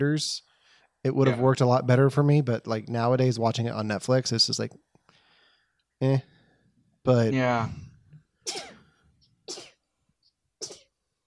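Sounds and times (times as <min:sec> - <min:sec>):
speech: 0:00.0 - 0:04.9, 0:06.0 - 0:06.3, 0:07.0 - 0:07.8
person sneezing: 0:08.5 - 0:08.8.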